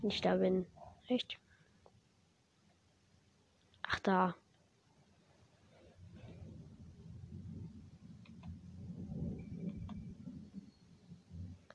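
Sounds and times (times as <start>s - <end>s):
speech: 0.0s - 1.4s, 3.9s - 4.4s
video game storm thunder rumbling by a lighthouse: 6.0s - 11.7s.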